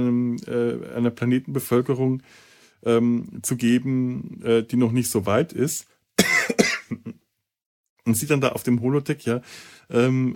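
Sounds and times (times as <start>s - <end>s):
speech: 0.0s - 5.9s, 6.5s - 7.2s, 8.0s - 10.3s
person coughing: 6.2s - 7.2s.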